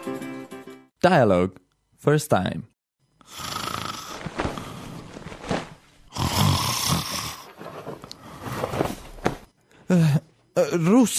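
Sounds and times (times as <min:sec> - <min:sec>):
speech: 0:01.0 - 0:02.7, 0:09.9 - 0:11.1
person snoring lying on their back: 0:03.2 - 0:05.1, 0:06.1 - 0:08.7.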